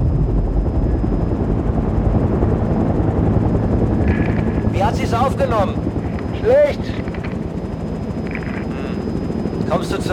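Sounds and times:
helicopter rotor droning: 0:00.0 - 0:10.1
speech: 0:05.1 - 0:05.8, 0:06.4 - 0:07.0, 0:09.7 - 0:10.1.

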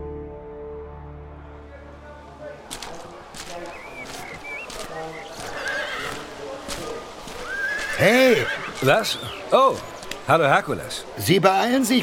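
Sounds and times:
horse hooves clip-clopping on a hard surface: 0:02.6 - 0:10.6
horse whinnying near stables at a racetrack: 0:05.5 - 0:06.2, 0:07.4 - 0:09.4
speech: 0:08.0 - 0:12.0.

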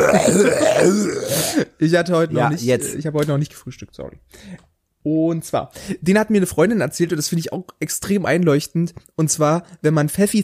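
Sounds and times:
loud gurgling burp: 0:00.0 - 0:01.6
speech: 0:00.1 - 0:10.4.

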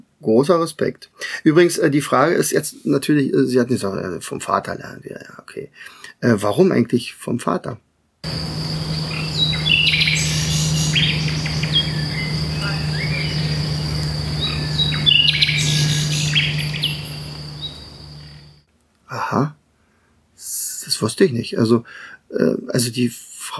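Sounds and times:
speech: 0:00.2 - 0:09.0, 0:19.3 - 0:19.6, 0:20.9 - 0:23.5
low constant hum: 0:08.2 - 0:18.6
steady high insect drone: 0:08.2 - 0:18.6
nightingale singing: 0:08.3 - 0:18.6.

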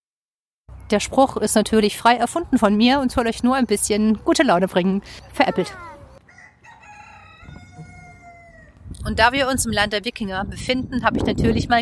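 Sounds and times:
speech: 0:00.9 - 0:05.9, 0:09.0 - 0:11.7
rooster crowing cock-a-doodle-doo: 0:06.0 - 0:08.8.

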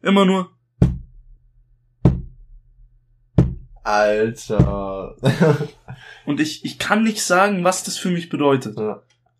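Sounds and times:
speech: 0:00.0 - 0:00.6, 0:03.9 - 0:09.1
rhythmic knocks with a stick or hand on a wooden chair: 0:00.8 - 0:01.1, 0:02.0 - 0:02.4, 0:03.4 - 0:03.8, 0:04.5 - 0:04.8
laughter: 0:04.7 - 0:06.4.

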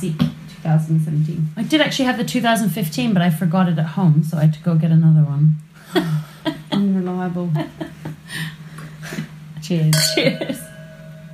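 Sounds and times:
speech: 0:00.0 - 0:06.2, 0:07.2 - 0:08.4, 0:09.7 - 0:10.7
low steady hum: 0:00.0 - 0:11.3
red wine glasses clinking in a toast: 0:09.9 - 0:11.3.

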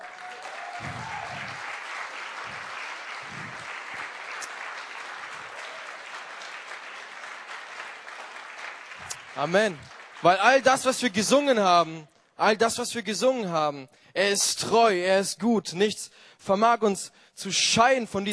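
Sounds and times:
people whooping: 0:00.0 - 0:04.6, 0:05.3 - 0:06.2
large audience applauding in church: 0:00.0 - 0:11.1
speech: 0:09.4 - 0:18.3.

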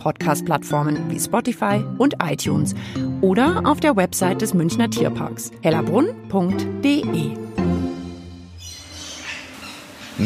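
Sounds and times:
speech: 0:00.0 - 0:07.5
lories and Amazon parrots calling and screeching: 0:08.6 - 0:10.2.

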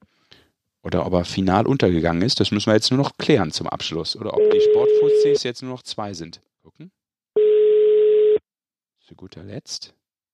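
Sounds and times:
speech: 0:00.8 - 0:07.0, 0:09.1 - 0:10.0
telephone ringback tone from an unanswered outgoing call: 0:04.4 - 0:05.4, 0:07.4 - 0:08.4.

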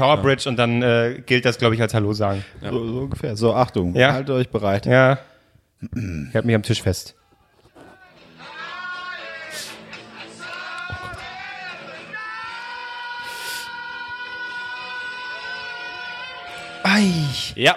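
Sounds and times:
speech: 0:00.0 - 0:07.2, 0:17.0 - 0:17.7
crowd cheering: 0:09.9 - 0:17.7
crowd of people whistling: 0:11.6 - 0:17.6.

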